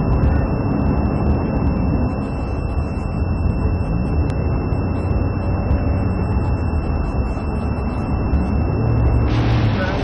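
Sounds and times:
police car sirens with high-pitched tones: 0:00.0 - 0:10.0.

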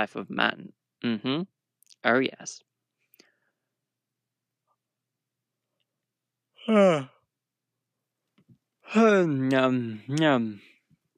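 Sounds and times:
speech: 0:00.0 - 0:02.7, 0:06.6 - 0:07.2, 0:08.9 - 0:10.7
tired person yawning aloud: 0:06.6 - 0:07.2.

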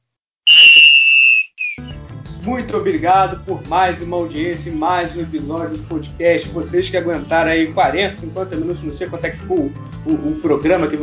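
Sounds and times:
referee's final whistle blast: 0:00.5 - 0:01.9
music: 0:01.8 - 0:11.0
speech: 0:02.5 - 0:11.0.

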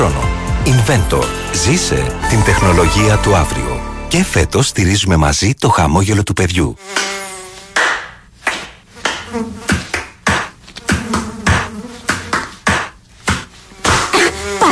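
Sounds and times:
speech: 0:00.1 - 0:07.1
mosquito buzzing: 0:06.8 - 0:08.2, 0:08.9 - 0:14.7
sharp slapping hits: 0:06.9 - 0:14.2.

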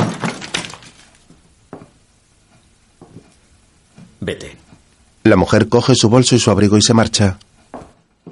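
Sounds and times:
record disc being broken by hand: 0:00.0 - 0:01.5
speech: 0:04.2 - 0:04.6, 0:05.2 - 0:07.5.

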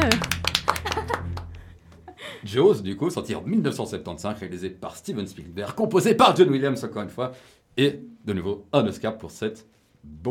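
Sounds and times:
small group clapping hands in applause: 0:00.0 - 0:02.1
laughter: 0:00.0 - 0:02.4
speech: 0:02.4 - 0:10.2.

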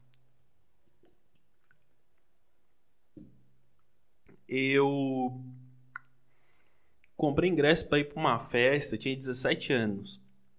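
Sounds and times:
person drinking water: 0:00.8 - 0:02.3
speech: 0:04.5 - 0:05.5, 0:07.2 - 0:10.2.

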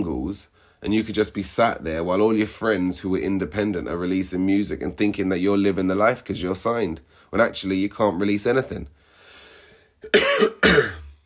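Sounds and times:
speech: 0:00.0 - 0:09.0, 0:10.0 - 0:10.9
person coughing: 0:10.0 - 0:11.2.

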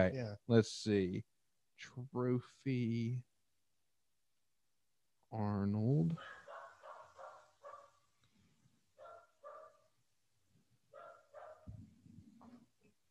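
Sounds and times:
speech: 0:00.0 - 0:03.3, 0:05.3 - 0:06.4
dog barking in short bursts: 0:06.2 - 0:08.0, 0:09.0 - 0:09.9, 0:10.9 - 0:11.8.

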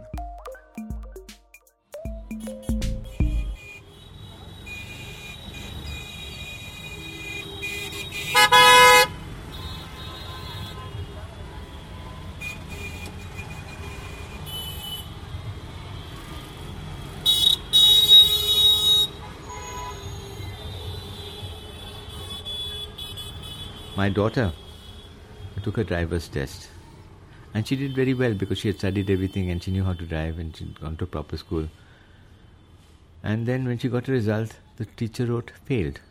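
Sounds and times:
car horns honking in Indian street traffic: 0:02.4 - 0:11.0, 0:12.0 - 0:15.1, 0:17.2 - 0:24.0
busy street traffic rumble in India: 0:02.6 - 0:36.0
speech: 0:24.0 - 0:24.6, 0:25.6 - 0:26.8, 0:27.6 - 0:31.8, 0:33.2 - 0:36.0.

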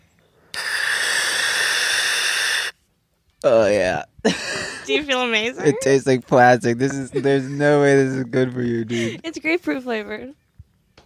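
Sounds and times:
person breathing in through the mouth from a trigger-activated grapefruit-flavored inhaler: 0:00.5 - 0:02.8
speech: 0:03.4 - 0:10.4
laughter: 0:04.3 - 0:04.9, 0:05.6 - 0:09.3.

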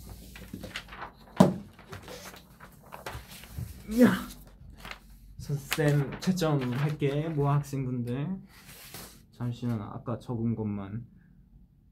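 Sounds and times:
sheet of paper rustling as it is swapped out: 0:00.0 - 0:07.7, 0:08.5 - 0:09.2
speech: 0:03.9 - 0:04.3, 0:05.5 - 0:08.6, 0:09.4 - 0:11.1.

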